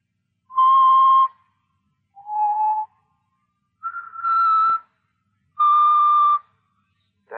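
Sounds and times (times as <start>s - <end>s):
person whistling a short melody: 0.5s - 1.4s, 2.2s - 2.9s, 3.8s - 4.9s, 5.6s - 6.5s.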